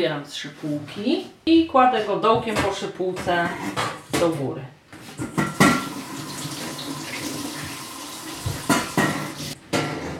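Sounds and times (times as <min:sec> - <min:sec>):
speech: 0:00.0 - 0:05.4
water running from a tap into a kettle: 0:05.6 - 0:09.6.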